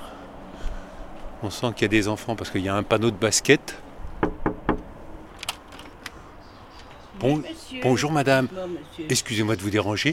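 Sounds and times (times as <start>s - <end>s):
speech: 1.4s - 3.9s, 7.2s - 10.1s
knocking on a house door: 4.2s - 4.9s.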